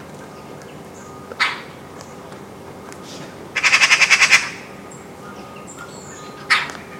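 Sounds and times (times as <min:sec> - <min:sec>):
Eurasian magpie rattling chatter and rasping calls: 0:03.6 - 0:04.7.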